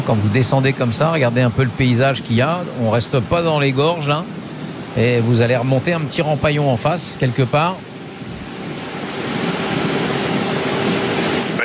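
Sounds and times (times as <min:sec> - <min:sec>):
speech: 0:00.0 - 0:04.4, 0:05.0 - 0:07.9
light wind blowing: 0:00.0 - 0:11.6.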